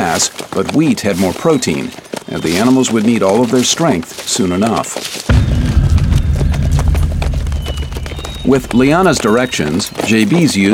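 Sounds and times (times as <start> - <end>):
speech: 0.0 - 5.4, 8.5 - 10.7
horse hooves clip-clopping at a walking pace: 0.0 - 10.7
low rumbling: 5.3 - 9.9.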